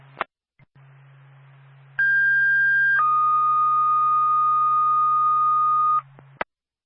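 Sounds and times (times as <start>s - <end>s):
low radio hum: 0.0s - 6.5s
fire department dispatch paging alert tones: 2.0s - 6.0s.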